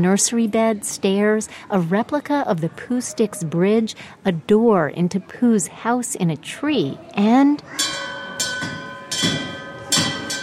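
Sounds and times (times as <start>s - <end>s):
speech: 0.0s - 8.2s
bell rung enthusiastically by a toddler at a children's museum exhibition: 7.7s - 10.4s.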